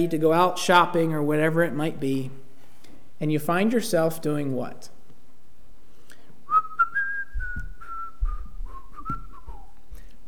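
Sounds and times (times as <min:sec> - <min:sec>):
speech: 0:00.0 - 0:02.4, 0:03.2 - 0:04.9
person whistling a tune: 0:06.5 - 0:09.8
low rumbling thuds: 0:07.2 - 0:09.6.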